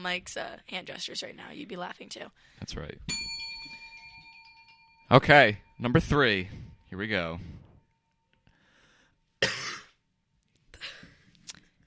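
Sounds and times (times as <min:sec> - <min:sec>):
speech: 0:00.0 - 0:03.3, 0:05.1 - 0:07.6
breathing: 0:02.3 - 0:02.7, 0:06.4 - 0:07.8, 0:08.4 - 0:09.3
person coughing: 0:09.4 - 0:10.0.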